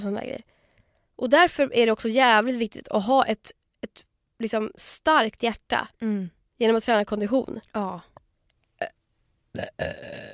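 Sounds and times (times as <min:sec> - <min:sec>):
speech: 0:00.0 - 0:00.6, 0:01.2 - 0:08.1, 0:08.8 - 0:10.3
person burping: 0:08.8 - 0:10.3.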